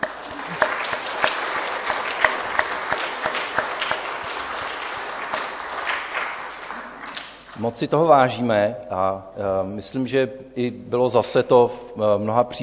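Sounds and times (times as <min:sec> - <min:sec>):
audience applauding: 0:00.0 - 0:07.8
speech: 0:07.6 - 0:12.6.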